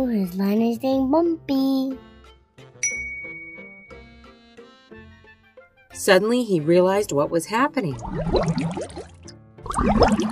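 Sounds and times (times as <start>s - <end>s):
speech: 0.0s - 2.1s, 6.0s - 10.2s
ocean water sloshing, bubbling and splashing: 7.9s - 10.2s.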